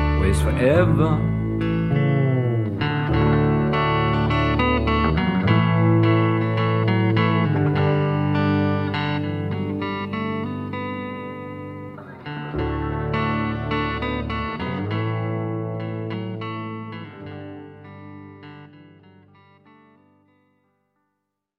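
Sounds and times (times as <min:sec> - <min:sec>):
deep steady bass line: 0:00.0 - 0:11.4, 0:12.2 - 0:17.6
heavily effected distorted electric guitar: 0:00.0 - 0:20.0
speech: 0:00.3 - 0:01.4.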